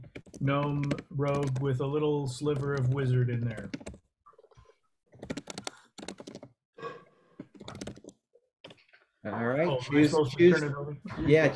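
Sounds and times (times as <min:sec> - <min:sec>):
typing on a computer keyboard: 0:00.0 - 0:01.8, 0:02.4 - 0:04.0, 0:05.2 - 0:06.5, 0:07.5 - 0:08.8
speech: 0:00.4 - 0:03.9, 0:09.3 - 0:11.5.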